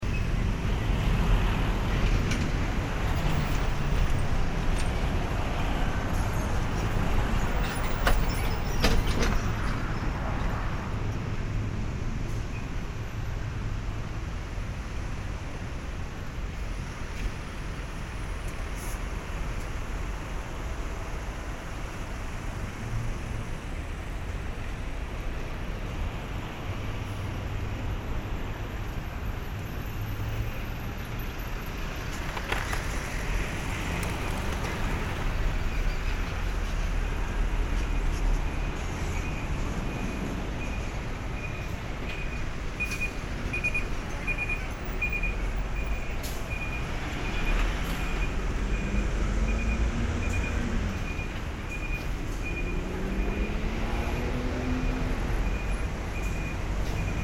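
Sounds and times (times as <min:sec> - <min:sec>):
ambient sound of an intersection with heavy traffic: 0:00.0 - 0:57.2.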